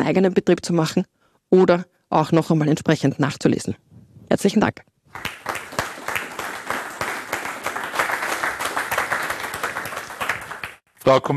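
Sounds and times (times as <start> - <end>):
speech: 0.0 - 5.6, 11.1 - 11.3
audience applause after a talk: 5.1 - 10.8.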